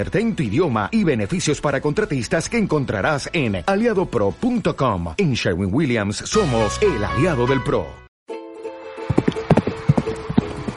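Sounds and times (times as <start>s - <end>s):
speech: 0.0s - 8.0s
horse hooves clip-clopping as a horse performs movements: 9.1s - 10.7s.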